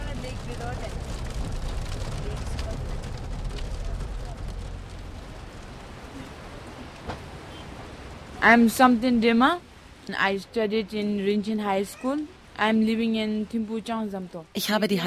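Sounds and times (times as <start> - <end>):
low rumbling drone of a Jeep engine: 0.0 - 6.4
steady dense rain pouring down during a Jeep drive in Bhutan: 0.0 - 15.0
speech: 8.4 - 15.0.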